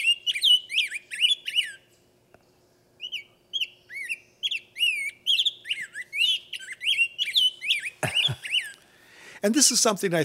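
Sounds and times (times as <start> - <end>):
rose-breasted grosbeak singing warbled whistles: 0.0 - 1.9, 3.0 - 8.8
speech: 9.4 - 10.2.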